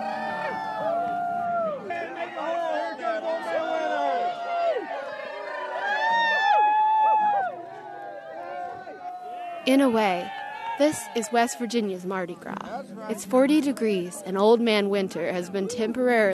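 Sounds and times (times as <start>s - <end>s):
large crowd cheering, whooping and howling at a midnight bonfire in West Virginia: 0.0s - 12.0s
speech: 9.7s - 16.3s.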